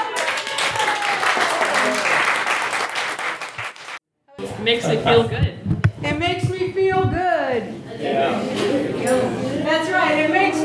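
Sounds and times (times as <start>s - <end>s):
crowd applauding with many hands clapping: 0.0s - 4.0s
people cheering: 0.0s - 4.0s
crowd chatter: 4.3s - 10.6s
speech: 4.6s - 10.6s.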